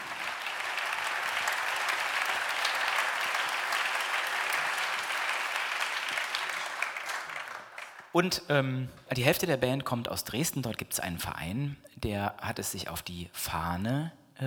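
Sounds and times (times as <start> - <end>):
concert audience applause: 0.0 - 8.2
speech: 8.2 - 14.4.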